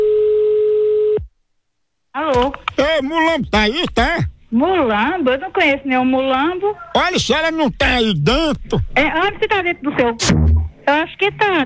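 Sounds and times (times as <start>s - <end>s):
telephone ringback tone on an outgoing call: 0.0s - 1.2s
speech: 2.4s - 11.6s.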